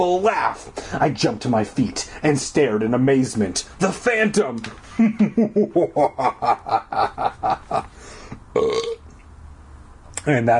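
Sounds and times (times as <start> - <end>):
speech: 0.0 - 9.0, 10.2 - 10.5
laughter: 4.9 - 7.9
long loud stuttering burp: 8.5 - 9.0.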